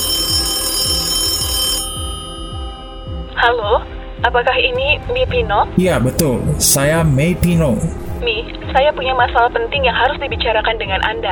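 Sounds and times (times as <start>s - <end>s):
telephone ringing: 0.0s - 3.8s
speech: 3.4s - 11.3s.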